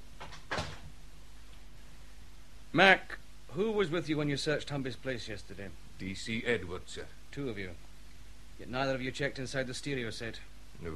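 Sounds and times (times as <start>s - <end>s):
door closing thud: 0.2s - 0.9s
speech: 2.7s - 7.9s, 8.6s - 10.9s.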